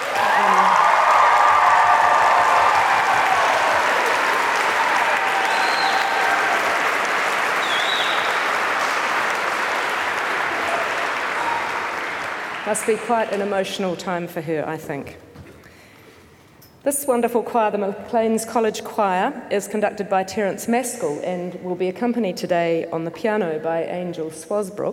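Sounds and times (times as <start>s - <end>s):
audience applause for an elderly woman at a choir concert: 0.0s - 13.8s
speech: 12.7s - 15.3s, 16.8s - 24.9s.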